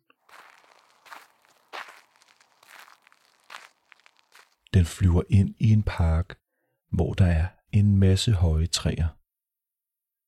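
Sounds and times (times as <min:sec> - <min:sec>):
footsteps crunching at a walking pace: 0:00.0 - 0:04.7
speech: 0:04.7 - 0:09.2.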